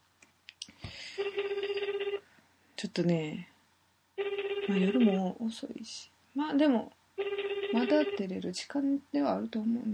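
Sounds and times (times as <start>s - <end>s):
ringback tone on an outgoing telephone call: 1.1s - 2.3s, 4.2s - 5.3s, 7.2s - 8.3s
speech: 2.8s - 3.5s, 4.7s - 7.0s, 7.7s - 9.9s.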